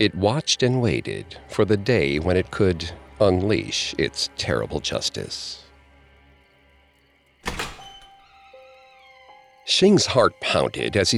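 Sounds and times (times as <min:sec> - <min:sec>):
speech: 0:00.0 - 0:05.6, 0:09.7 - 0:11.1
basement door shutting with a solid thunk: 0:07.4 - 0:08.6.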